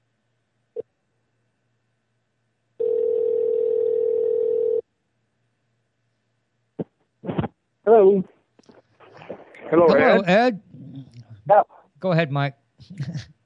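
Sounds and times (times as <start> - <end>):
telephone dial tone: 2.8 - 4.8
speech: 7.9 - 8.4, 9.7 - 10.6, 11.5 - 13.3.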